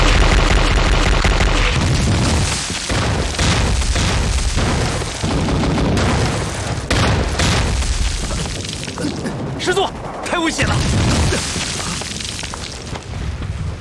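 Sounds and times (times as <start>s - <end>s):
gunfire bursts: 0.0s - 8.6s
artillery shells exploding with heavy booms: 0.0s - 12.9s
deep rumbling artillery impacts: 0.0s - 13.7s.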